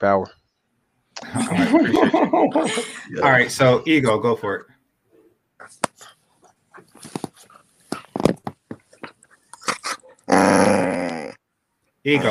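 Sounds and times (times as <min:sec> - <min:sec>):
speech: 0:00.0 - 0:00.4, 0:01.2 - 0:04.8, 0:12.0 - 0:12.2
laughter: 0:01.2 - 0:03.2
dog growling, snapping and snarling aggressively: 0:09.6 - 0:11.4.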